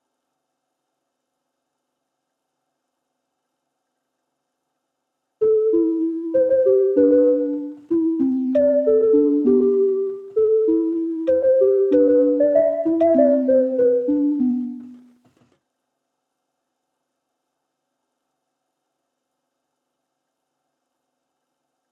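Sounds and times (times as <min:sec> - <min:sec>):
soft synth pluck at 97 BPM in A minor: 0:05.4 - 0:15.1.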